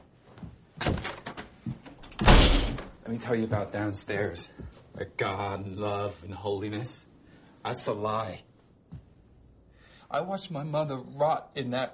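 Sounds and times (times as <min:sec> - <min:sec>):
door being closed with dull heavy thuds: 0:00.8 - 0:03.0
speech: 0:03.1 - 0:08.5, 0:10.1 - 0:11.9.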